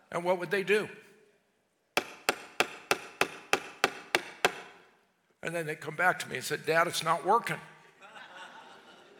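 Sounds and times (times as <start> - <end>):
speech: 0.1 - 1.1, 5.4 - 7.7
hammer tapping a nail into wood: 2.0 - 4.8
laughter: 8.0 - 9.1.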